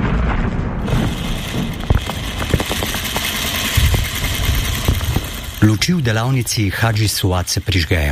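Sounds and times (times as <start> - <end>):
war explosions booming: 0.0 - 5.6
sewing machine whirring in a workshop in Gaza: 0.9 - 7.2
speech: 5.7 - 8.1.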